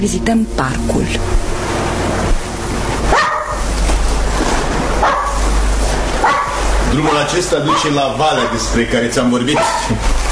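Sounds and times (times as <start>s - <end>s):
speech: 0.0s - 1.6s, 7.0s - 10.2s
steady low rumble of noise: 0.0s - 9.5s
small dog barking in sharp yips: 3.1s - 3.6s, 5.0s - 5.4s, 6.2s - 6.6s.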